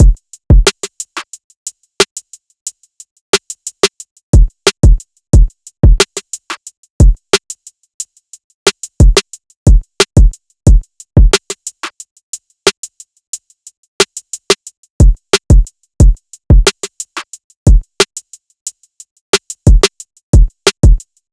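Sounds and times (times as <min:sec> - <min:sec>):
drum loop at 90 BPM: 0:00.0 - 0:01.0, 0:04.4 - 0:07.2, 0:08.8 - 0:11.9, 0:15.0 - 0:17.0, 0:17.7 - 0:18.1, 0:19.6 - 0:21.0.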